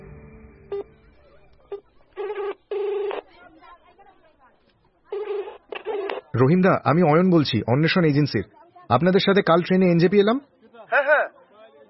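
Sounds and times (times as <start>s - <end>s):
telephone dialing tones inside a car: 1.7s - 3.3s, 5.1s - 6.3s
speech: 6.4s - 10.5s.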